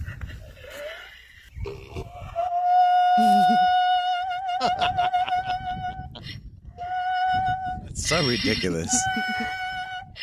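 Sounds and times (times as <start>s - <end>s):
donkey braying: 1.9s - 10.2s
speech: 8.2s - 9.7s.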